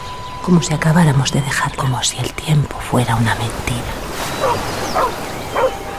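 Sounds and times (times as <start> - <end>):
speech: 0.4 - 5.8
dog yelping, barking and whimpering: 4.4 - 5.9.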